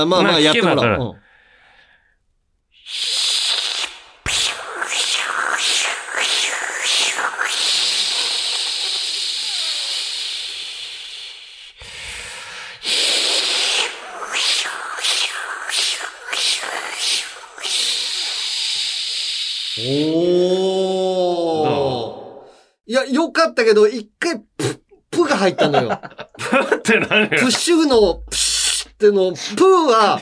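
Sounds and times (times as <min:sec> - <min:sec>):
speech: 0:00.0 - 0:01.2, 0:19.8 - 0:20.4, 0:22.9 - 0:24.5, 0:25.3 - 0:28.4, 0:29.0 - 0:30.2
voice imitating a minmin cicada call: 0:02.8 - 0:11.8, 0:12.9 - 0:22.1
laughter: 0:25.5 - 0:27.6.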